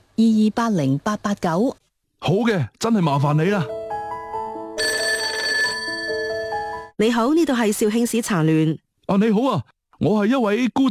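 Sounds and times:
speech: 0.2 - 3.8, 7.0 - 10.8
telephone ringing on an outgoing call: 4.8 - 6.9.

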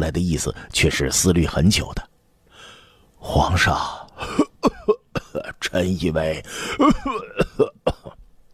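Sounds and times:
speech: 0.0 - 2.1, 3.2 - 4.4, 5.7 - 7.7
faint wheezy breaths of a sick old man: 2.5 - 3.1
weak sick old man coughing: 4.2 - 5.6, 6.6 - 8.2.

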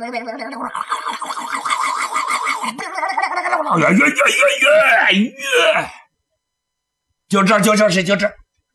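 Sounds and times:
speech: 0.0 - 1.4, 2.6 - 6.0, 7.3 - 8.4
voice imitating horses neighing: 0.0 - 6.0.

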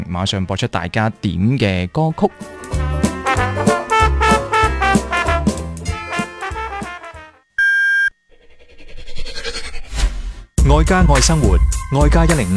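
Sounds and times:
speech: 0.1 - 3.1, 10.7 - 12.5
music: 0.8 - 7.4, 10.6 - 12.5
radio half-hour time signal beep: 7.6 - 8.2.

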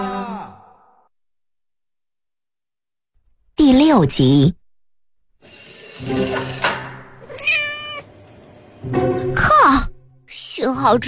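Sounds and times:
speech: 3.9 - 4.6, 5.4 - 6.6, 8.8 - 9.2, 10.6 - 11.0
brown mixed-coat cat yowling in drawn-out wavering meows: 7.2 - 8.1.

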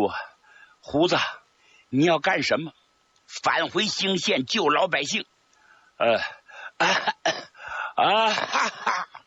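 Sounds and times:
speech: 0.0 - 0.2, 0.8 - 5.3, 6.0 - 7.4, 8.0 - 9.1
person acting out harsh throaty coughs: 6.8 - 7.6, 8.2 - 9.2.

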